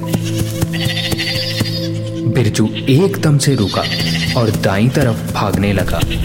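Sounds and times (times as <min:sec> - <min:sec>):
goats bleating in a forest across a river: 0:00.0 - 0:05.0
steady rhythmic knocking: 0:00.0 - 0:06.2
speech: 0:02.4 - 0:06.2.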